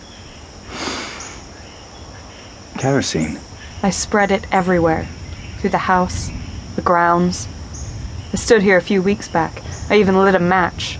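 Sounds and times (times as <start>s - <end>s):
quiet hiss: 0.0s - 10.9s
person sniffing the air through the nose: 0.7s - 1.4s
speech: 2.8s - 7.6s, 8.3s - 10.9s.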